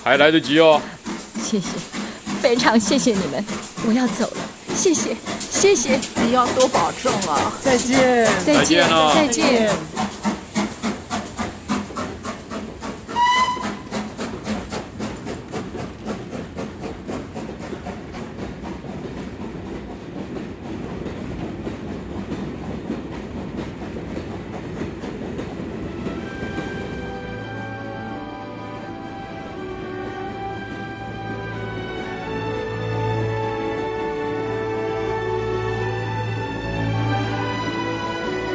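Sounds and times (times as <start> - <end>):
speech: 0.0 - 10.1
train travelling on rails: 0.0 - 38.5
train whistle: 13.1 - 14.1, 25.9 - 38.5.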